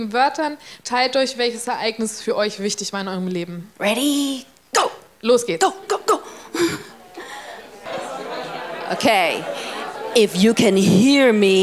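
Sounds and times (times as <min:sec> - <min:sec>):
speech: 0:00.0 - 0:06.9, 0:08.9 - 0:11.6
audience chuckling: 0:05.7 - 0:11.6
audience talking over one another in overlapping hubbub: 0:05.8 - 0:11.6.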